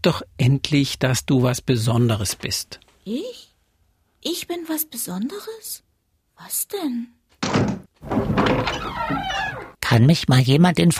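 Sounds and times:
speech: 0.0 - 3.5, 4.2 - 10.9
door pulled shut with a dull thunk: 7.4 - 9.8.

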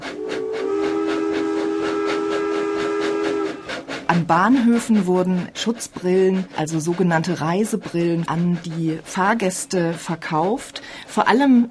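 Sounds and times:
long sustained train whistle: 0.0 - 4.4
train rolling along the rails with rhythmic clatter of wheels: 0.0 - 11.6
speech: 4.1 - 11.6.

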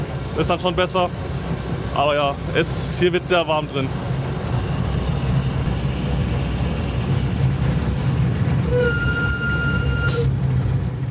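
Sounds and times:
miniature park railway train engine in a palace garden: 0.0 - 11.1
speech: 0.4 - 1.4, 2.0 - 4.0
miniature train whistle-like tone: 8.6 - 10.3.

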